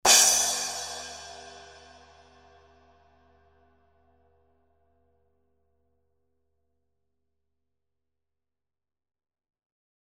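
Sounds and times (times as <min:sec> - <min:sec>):
hybrid splash cymbal: 0:00.1 - 0:02.6.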